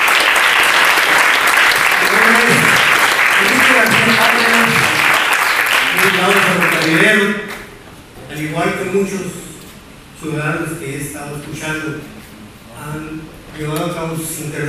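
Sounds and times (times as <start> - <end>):
crowd applause at a political congress: 0.0 - 7.6
speech: 6.2 - 7.5, 8.4 - 9.5, 10.2 - 12.2, 12.8 - 14.6.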